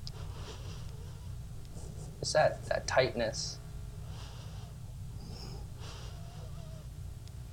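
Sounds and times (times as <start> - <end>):
low hum: 0.0 - 7.5
breathing in through the nose: 0.1 - 1.4, 4.0 - 6.8
speech: 2.2 - 3.6.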